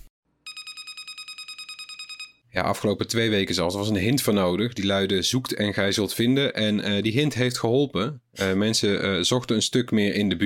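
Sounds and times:
Samsung SmartTag item tracker beeping: 0:00.5 - 0:02.4
speech: 0:02.6 - 0:10.4.

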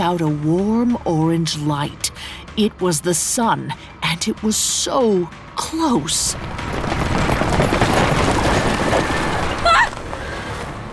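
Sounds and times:
speech: 0:00.0 - 0:07.8
rumbling clatter of heavy chariot wheels: 0:06.1 - 0:10.9.

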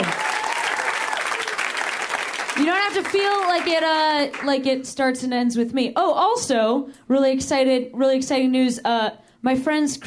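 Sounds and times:
crowd applauding: 0:00.0 - 0:04.5
speech: 0:02.6 - 0:10.0.

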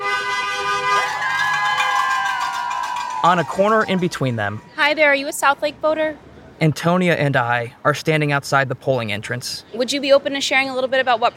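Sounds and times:
car horns honking from passing traffic: 0:00.0 - 0:04.7
busy crowd murmuring and calling out: 0:01.0 - 0:05.7
speech: 0:03.2 - 0:11.3.

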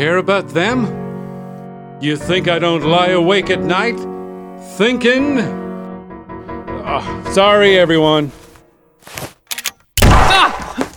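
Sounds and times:
speech: 0:00.0 - 0:01.0, 0:02.0 - 0:05.6, 0:06.9 - 0:08.4
gunshot: 0:10.0 - 0:10.9.

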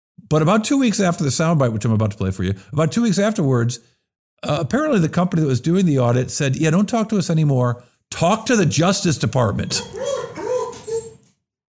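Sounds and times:
speech: 0:00.3 - 0:10.4
dog whimpering and yipping: 0:09.8 - 0:11.3.

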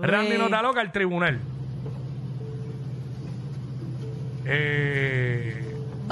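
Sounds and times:
speech: 0:00.0 - 0:01.6, 0:04.4 - 0:06.0
black van engine running with low rumble: 0:01.2 - 0:06.0.

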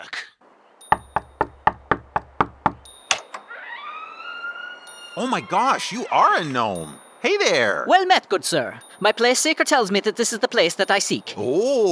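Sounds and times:
sharp thumps: 0:00.8 - 0:03.6
knocking on a front door: 0:00.9 - 0:02.9
rising tonal whine: 0:03.3 - 0:07.3
speech: 0:05.2 - 0:11.9.

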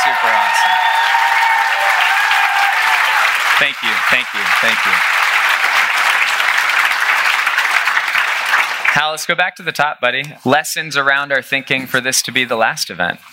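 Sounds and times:
large audience applause: 0:00.0 - 0:09.2
speech: 0:03.6 - 0:05.2, 0:09.0 - 0:13.3.

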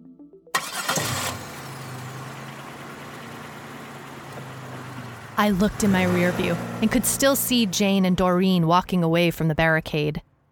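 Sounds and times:
car engine cranking and settling into idle: 0:00.6 - 0:09.4
speech: 0:05.4 - 0:10.3.

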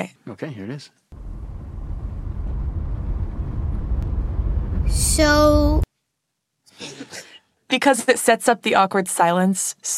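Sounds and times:
speech: 0:00.0 - 0:01.1, 0:04.9 - 0:05.9, 0:06.8 - 0:09.9
low engine rumble inside a moving car: 0:01.2 - 0:05.8
road noise droning: 0:01.2 - 0:05.8.

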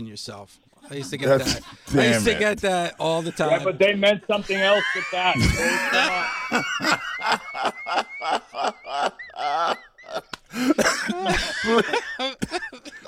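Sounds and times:
speech: 0:00.0 - 0:09.1, 0:10.6 - 0:12.3
person laughing hard: 0:04.5 - 0:13.0
harsh coughing fit with wheezy gasps: 0:05.3 - 0:06.2, 0:10.5 - 0:13.0.

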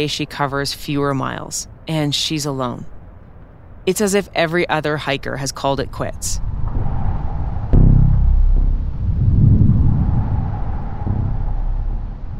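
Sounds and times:
speech: 0:00.0 - 0:02.9, 0:03.9 - 0:06.4
steady wind noise: 0:05.9 - 0:12.3
thunder from a storm front rolling in: 0:06.4 - 0:12.3.

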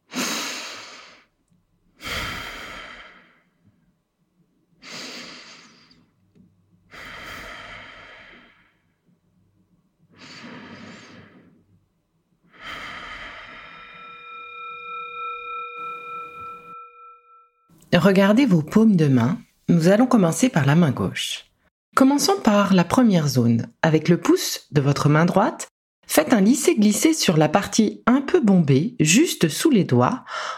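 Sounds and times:
deep slow breathing during a relaxation and reflexology warm-up: 0:02.0 - 0:03.8, 0:04.8 - 0:06.2, 0:06.9 - 0:09.1, 0:10.1 - 0:11.8, 0:12.4 - 0:17.1
speech: 0:17.9 - 0:30.5.

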